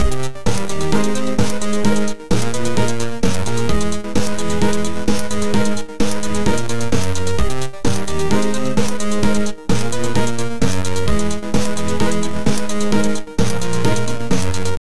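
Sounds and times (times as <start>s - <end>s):
sci-fi electronic 8-bit chiptune music: 0.0s - 14.8s.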